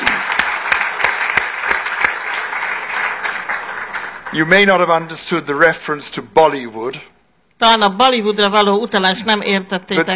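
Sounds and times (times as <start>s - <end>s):
audience applause: 0.0s - 5.1s
speech: 4.3s - 10.1s.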